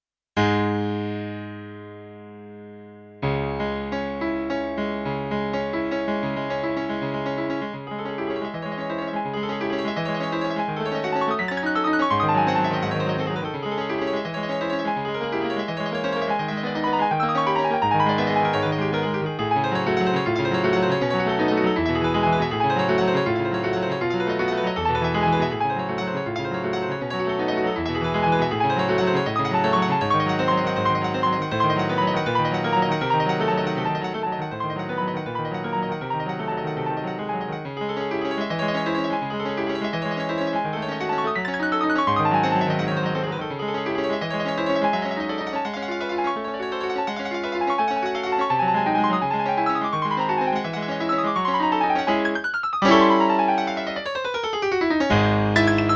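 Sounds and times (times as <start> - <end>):
classic grand piano: 0.4 - 55.9.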